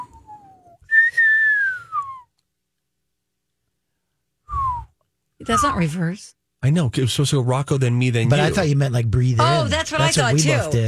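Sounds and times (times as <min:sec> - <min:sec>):
person whistling an old-timey catcall: 0:00.0 - 0:02.3, 0:04.5 - 0:05.8
speech: 0:05.4 - 0:10.8.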